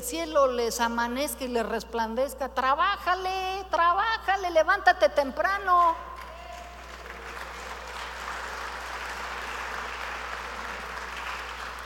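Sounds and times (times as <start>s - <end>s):
speech: 0.1s - 6.2s
sparse audience applause: 6.2s - 11.8s.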